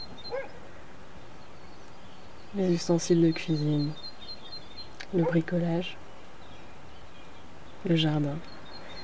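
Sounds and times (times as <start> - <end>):
steady hiss: 0.0 - 9.0
single short dog bark: 0.2 - 0.6, 5.2 - 5.5
speech: 2.5 - 4.0, 5.1 - 6.0, 7.8 - 8.6.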